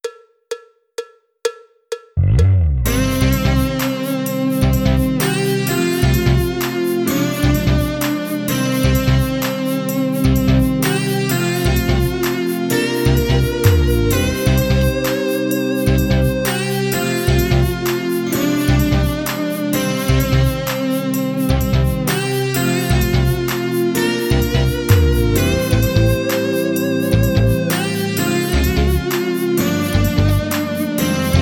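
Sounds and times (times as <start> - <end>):
mellow fusion music without drums: 2.9 - 31.4.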